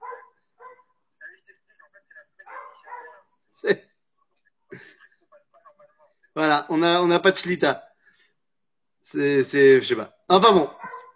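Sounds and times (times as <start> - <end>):
dog barking next door: 0.0 - 0.9, 2.4 - 3.3, 10.7 - 11.1
speech: 3.6 - 3.9, 6.4 - 7.9, 9.1 - 10.8.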